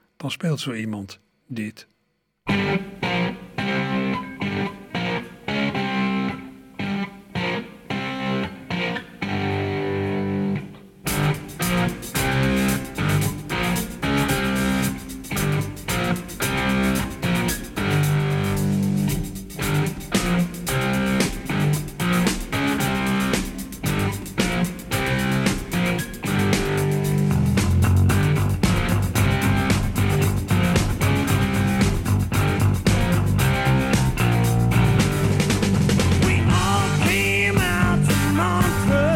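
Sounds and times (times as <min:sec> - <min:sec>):
speech: 0:00.2 - 0:03.0
loud distorted electric guitar riff: 0:02.5 - 0:39.1
pounding drums: 0:19.1 - 0:39.1.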